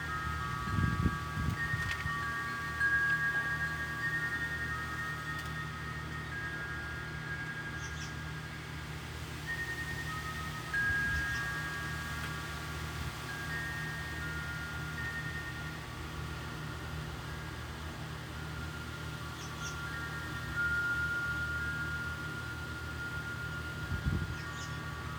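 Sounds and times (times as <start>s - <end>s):
wind chimes ringing: 0.0s - 25.1s.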